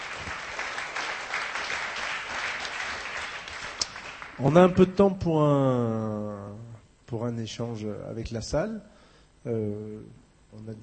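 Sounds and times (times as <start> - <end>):
audience applause: 0.0 - 4.9
speech: 4.4 - 10.8.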